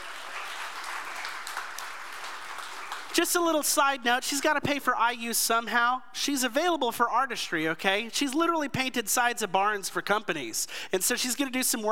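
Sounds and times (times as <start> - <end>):
audience applause: 0.0 - 3.2
speech: 3.2 - 11.9.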